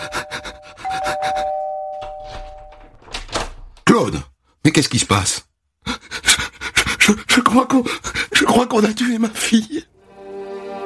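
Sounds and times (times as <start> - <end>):
doorbell chimes: 0.0 - 3.0
speech: 4.0 - 5.5, 7.1 - 9.9.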